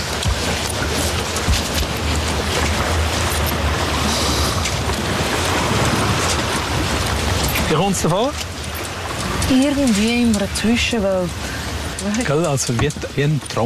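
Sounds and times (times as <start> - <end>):
lake water lapping against a drifting boat: 0.0 - 13.6
speech: 7.8 - 8.5, 9.5 - 13.6.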